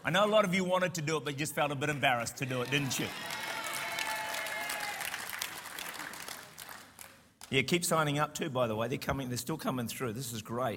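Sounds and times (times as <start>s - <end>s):
speech: 0.0s - 3.4s, 7.5s - 10.7s
crowd clapping: 1.9s - 7.6s
crowd cheering and shouting: 2.6s - 5.2s.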